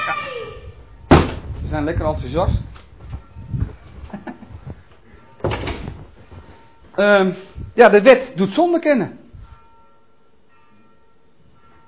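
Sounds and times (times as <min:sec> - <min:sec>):
speech: 0:01.7 - 0:02.7, 0:07.0 - 0:09.2
soft shuffle: 0:02.6 - 0:05.3, 0:05.9 - 0:07.8
door being pushed shut: 0:05.4 - 0:06.0.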